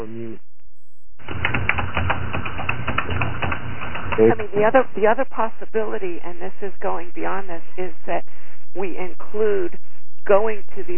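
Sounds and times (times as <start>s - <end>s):
typing on a computer keyboard: 1.2s - 4.3s
speech: 4.2s - 10.9s.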